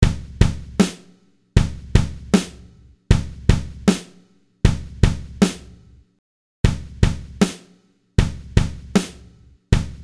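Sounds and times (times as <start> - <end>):
kick drum through valve drive and tape: 0.0 - 0.8, 1.6 - 2.3, 3.1 - 4.0, 4.6 - 5.5, 6.7 - 7.4, 8.2 - 9.0, 9.7 - 10.0
snare drum through valve drive and tape: 0.1 - 5.7, 6.7 - 10.0.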